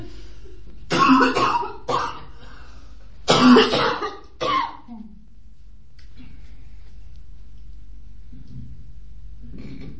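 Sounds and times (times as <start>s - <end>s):
person coughing: 0.9s - 2.4s, 3.3s - 4.9s
speech: 1.2s - 1.7s.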